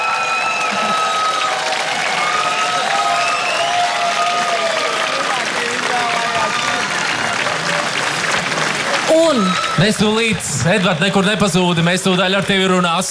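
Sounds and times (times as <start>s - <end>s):
audience whistles: 0.0s - 1.5s, 2.2s - 3.9s
audience cheering: 0.0s - 13.0s
large audience applause: 0.0s - 13.0s
speech: 9.3s - 13.0s.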